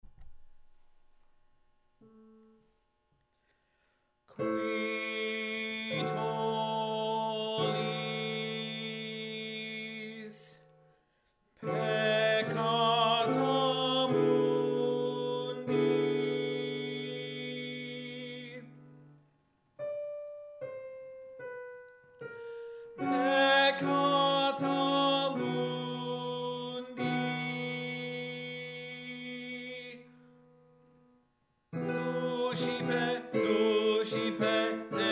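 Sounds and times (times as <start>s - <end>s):
tenor singing: 4.3s - 10.6s, 11.6s - 19.0s, 23.0s - 30.1s, 31.8s - 35.1s.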